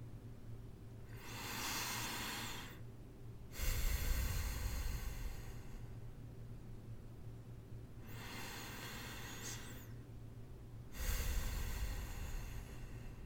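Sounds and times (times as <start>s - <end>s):
low steady hum: 0.0s - 13.2s
slow deep breathing during a relaxing massage: 1.0s - 2.9s, 3.5s - 6.2s, 8.0s - 10.1s, 10.9s - 13.2s.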